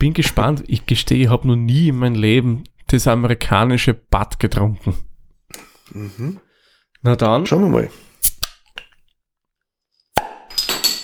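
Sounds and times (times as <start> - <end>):
speech: 0.0 - 8.1
lighter clicking and scraping on a beer bottle cap: 8.2 - 8.9
beer bottle cap popping open with a lighter: 10.2 - 11.0.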